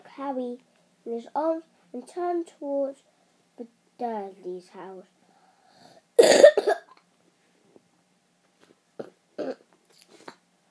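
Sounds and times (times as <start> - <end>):
speech: 0.2 - 5.2
person coughing harshly: 6.2 - 7.0.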